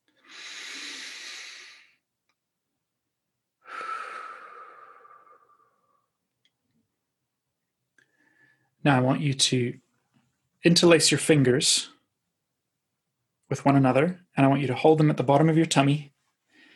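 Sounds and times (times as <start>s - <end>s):
slow deep intentional calming breaths: 0.1s - 2.1s, 3.6s - 6.2s, 8.0s - 8.8s, 16.4s - 16.7s
speech: 8.8s - 9.8s, 10.6s - 12.0s, 13.5s - 16.2s.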